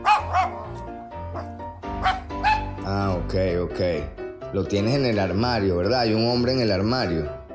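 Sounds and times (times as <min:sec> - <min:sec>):
man under a bed imitating a barking dog: 0:00.0 - 0:00.7, 0:02.0 - 0:02.8
speech: 0:03.3 - 0:07.4.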